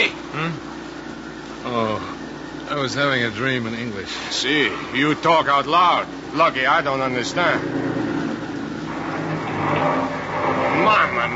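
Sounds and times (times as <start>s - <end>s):
speech: 2.8s - 7.9s
car engine whirring and revving: 5.9s - 11.3s
car wheels spinning in mud: 7.4s - 11.3s.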